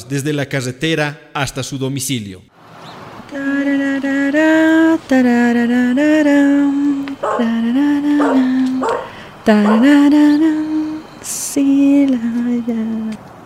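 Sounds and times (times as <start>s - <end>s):
speech: 0.1s - 2.6s, 3.3s - 10.6s, 11.2s - 13.3s
dog barking and howling at night: 7.2s - 10.7s.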